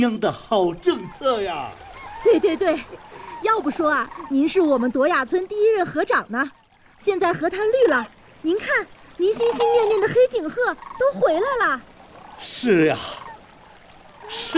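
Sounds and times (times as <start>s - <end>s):
speech: 0.0s - 13.2s, 14.3s - 14.5s
flock of black-necked cranes bugling on a green riverbank: 0.0s - 14.5s
water trickling: 0.0s - 14.5s.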